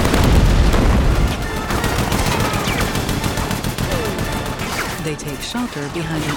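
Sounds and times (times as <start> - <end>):
explosions: 0.0 - 3.3
heavy gunfire bursts from a large gun: 0.0 - 6.3
speech: 5.2 - 6.3.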